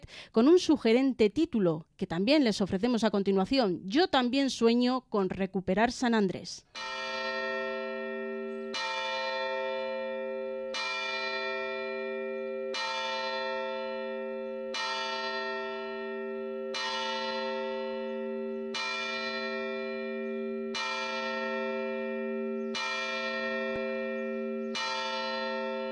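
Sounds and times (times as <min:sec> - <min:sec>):
speech: 0:00.1 - 0:07.2
church bell of the San Andrés Apóstol church in Granada tolling: 0:06.8 - 0:25.9.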